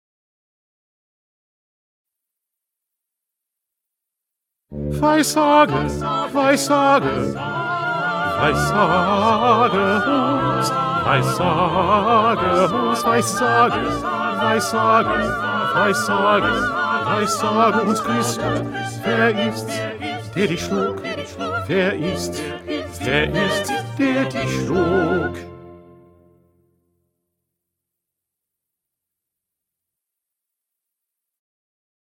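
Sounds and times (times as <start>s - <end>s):
bass: 4.8s - 25.7s.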